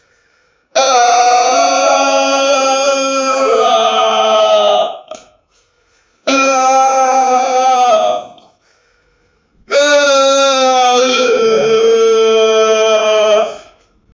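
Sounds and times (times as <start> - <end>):
medieval man crying out in pain: 0.8 - 5.0, 6.3 - 8.4, 9.7 - 13.7.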